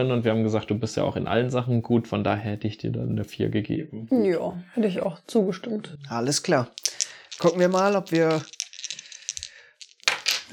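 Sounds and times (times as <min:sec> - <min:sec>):
speech: 0:00.0 - 0:08.6
dice rolling across a hard tabletop in a tabletop game: 0:06.6 - 0:10.5.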